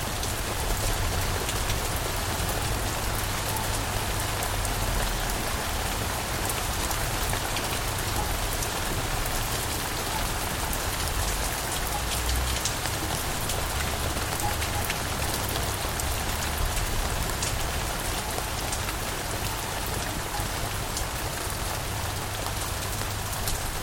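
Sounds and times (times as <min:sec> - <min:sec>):
nighttime downpour falling on a surface: 0:00.0 - 0:23.8.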